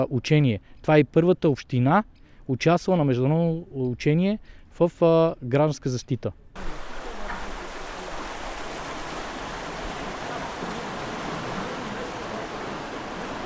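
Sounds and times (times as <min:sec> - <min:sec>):
speech: 0:00.0 - 0:06.8
rushing water during a flood rescue drill: 0:06.6 - 0:13.4.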